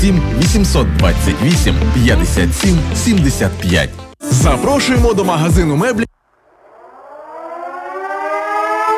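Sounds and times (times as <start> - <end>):
speech: 0.0 - 6.1
civil defense air raid siren sounding an air raid alert: 6.4 - 8.9.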